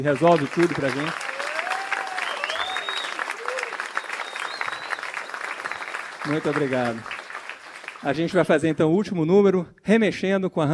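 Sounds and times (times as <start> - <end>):
speech: 0.0 - 1.2, 6.2 - 7.2, 8.0 - 10.7
dense audience applause: 0.0 - 8.6
cheers from an audience: 0.3 - 8.1
whistles from an audience: 1.2 - 6.1.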